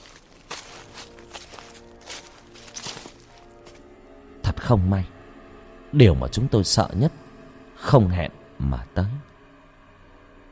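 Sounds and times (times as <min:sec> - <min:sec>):
heavy footsteps stomping: 0:00.0 - 0:03.8
speech: 0:04.7 - 0:05.2, 0:05.9 - 0:07.2, 0:07.9 - 0:09.3.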